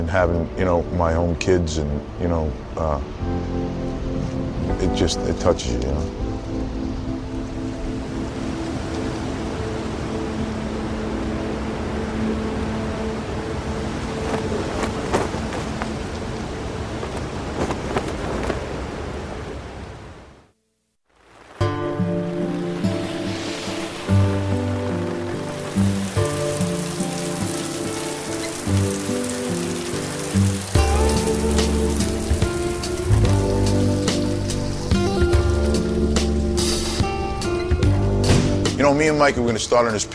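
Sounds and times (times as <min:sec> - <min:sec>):
speech: 0:00.0 - 0:06.3, 0:39.2 - 0:40.1
heavy rain during a flood watch: 0:00.0 - 0:40.1.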